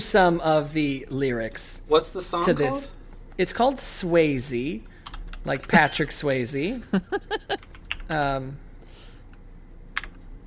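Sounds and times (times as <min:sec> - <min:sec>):
speech: 0:00.0 - 0:08.6
faint noise: 0:00.0 - 0:10.4
laughter: 0:05.7 - 0:07.7
typing on a computer keyboard: 0:07.6 - 0:08.1.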